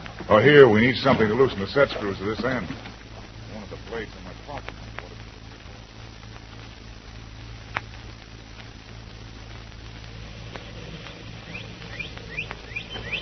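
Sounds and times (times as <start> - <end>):
steady low rumble: 0.0 - 13.2
speech: 0.3 - 2.9, 3.9 - 4.7
birds chirping at dawn: 10.2 - 13.2.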